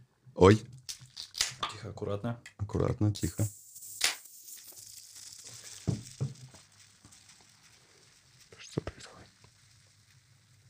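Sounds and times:
speech: 0.4s - 0.8s, 1.8s - 3.6s
sharp pops and clicks: 0.8s - 1.8s, 3.2s - 10.6s
dusty vinyl record crackling: 4.0s - 10.6s.

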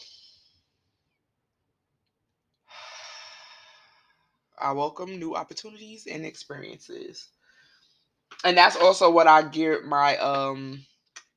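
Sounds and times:
deep breath: 2.7s - 4.4s, 7.4s - 8.1s
speech: 4.6s - 7.4s, 8.4s - 10.9s.

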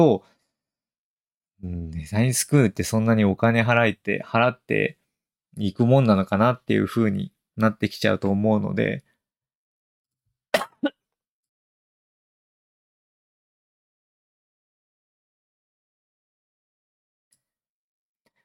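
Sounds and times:
speech: 0.0s - 0.3s, 1.6s - 5.0s, 5.6s - 9.1s
person coughing harshly: 10.6s - 11.0s.

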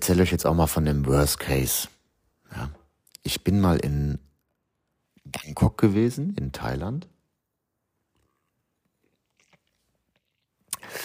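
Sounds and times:
speech: 0.0s - 4.2s, 5.3s - 7.1s
faint mouth clicks: 8.2s - 11.0s
person slurping jasmine tea: 9.0s - 11.0s.

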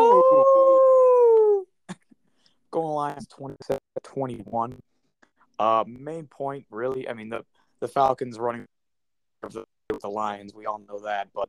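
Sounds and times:
person imitating a wolf howl: 0.0s - 1.7s
speech: 3.0s - 4.9s, 5.6s - 8.7s, 9.4s - 11.4s.

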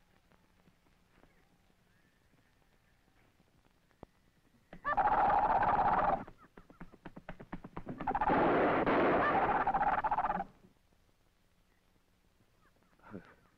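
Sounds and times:
harsh raspy owl screeches: 4.8s - 6.3s, 8.0s - 10.5s.

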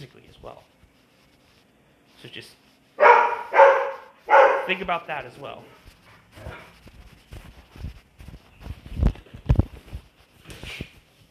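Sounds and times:
speech: 0.0s - 0.7s, 2.2s - 2.6s, 4.7s - 6.6s
shuffling noises: 0.0s - 11.2s
dog barking in thumping bursts: 3.0s - 4.9s.

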